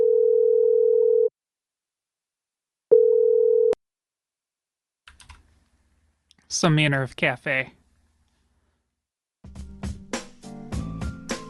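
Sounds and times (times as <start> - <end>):
ringback tone of an outgoing telephone call: 0.0 - 1.3, 2.9 - 3.8
speech: 6.5 - 7.8.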